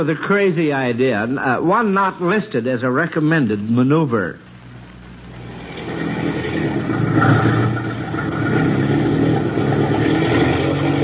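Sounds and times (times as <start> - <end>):
speech: 0.0 - 4.5
airplane engine revving at full throttle: 5.2 - 11.0.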